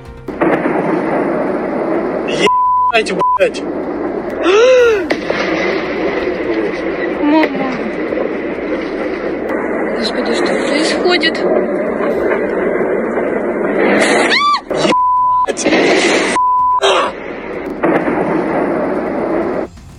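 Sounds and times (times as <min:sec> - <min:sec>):
heavy booming explosions at a weapons depot during an air attack: 0:00.0 - 0:19.9
short bleep tones: 0:02.4 - 0:03.6, 0:14.1 - 0:17.1
speech: 0:02.4 - 0:05.5, 0:10.0 - 0:11.8.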